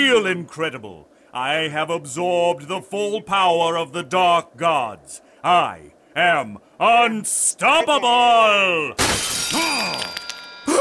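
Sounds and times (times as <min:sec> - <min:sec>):
speech: 0:00.1 - 0:10.2
crown shattering: 0:09.0 - 0:10.7.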